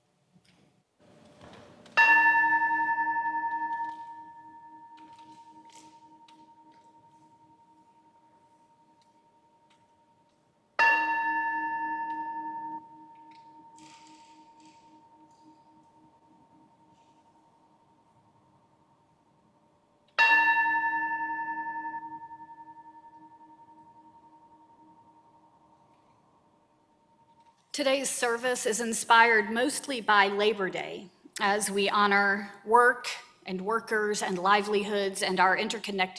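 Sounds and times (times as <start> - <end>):
bell rung to call people to worship: 2.0 - 9.4, 10.8 - 17.5, 20.2 - 26.2
speech: 27.8 - 36.1.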